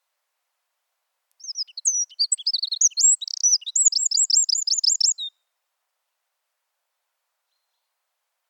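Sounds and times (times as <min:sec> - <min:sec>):
Eurasian wren song: 0:01.4 - 0:05.4, 0:07.5 - 0:08.0.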